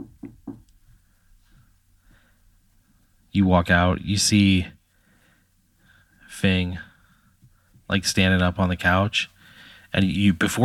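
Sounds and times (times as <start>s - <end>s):
soft knocking on a door: 0.0s - 0.6s
speech: 3.4s - 4.8s, 6.3s - 6.9s, 7.9s - 10.6s.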